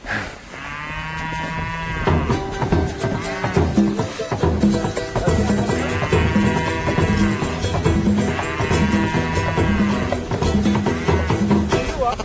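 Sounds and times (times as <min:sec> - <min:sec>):
cows mooing in a meadow: 0:00.1 - 0:04.2, 0:05.3 - 0:11.8
steady rhythmic pattern: 0:02.2 - 0:11.9.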